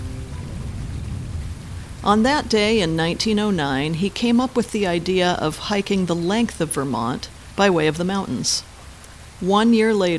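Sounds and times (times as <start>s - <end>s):
soft low rumble: 0.0s - 7.5s
steady rain pattering on a tent on Stratton Mountain in Vermont: 0.0s - 10.1s
speech: 2.0s - 8.7s, 9.4s - 10.1s.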